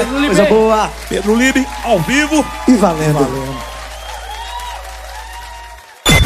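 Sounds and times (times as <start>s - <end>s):
speech: 0.0s - 3.8s
live audience applause: 0.0s - 6.2s.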